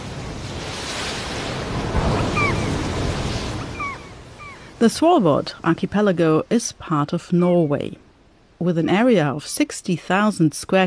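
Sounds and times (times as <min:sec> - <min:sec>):
wind noise: 0:00.0 - 0:04.8
Arctic Ocean waves and surf heard from a ship leaving Svalbard, Norway: 0:00.0 - 0:09.3
faint high bird-like chirps: 0:02.2 - 0:02.8, 0:03.6 - 0:04.8
speech: 0:04.8 - 0:08.0, 0:08.6 - 0:10.8.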